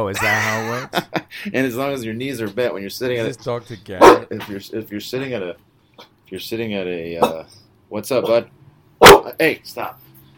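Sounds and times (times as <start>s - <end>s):
speech: 0.0s - 8.6s, 9.4s - 10.0s
dog barking at the postman: 4.0s - 4.3s, 9.0s - 9.4s.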